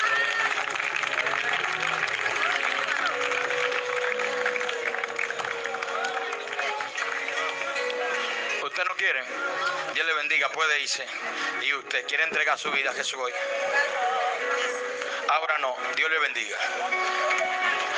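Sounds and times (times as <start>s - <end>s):
church audience clapping: 0.0s - 9.1s, 16.9s - 17.9s
church audience cheering: 0.0s - 9.9s
murmur of voices: 0.0s - 17.9s
speech: 10.5s - 14.0s, 15.3s - 17.7s.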